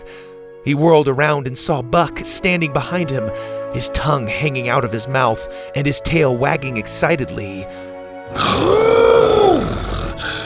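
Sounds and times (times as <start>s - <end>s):
speech: 0.6s - 9.3s
person imitating an excited T-Rex roar: 8.3s - 10.4s.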